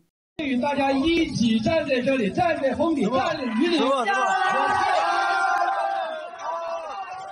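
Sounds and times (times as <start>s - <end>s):
school official speaking: 0.4s - 4.2s
crowd of students shouting and jeering outdoors: 2.9s - 7.2s.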